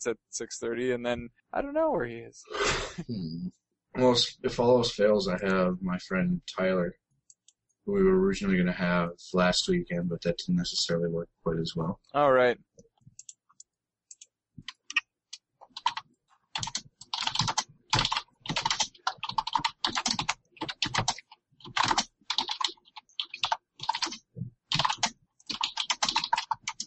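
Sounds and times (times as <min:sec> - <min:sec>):
speech: 0:00.0 - 0:07.0, 0:07.9 - 0:12.7
computer keyboard typing: 0:13.1 - 0:26.8.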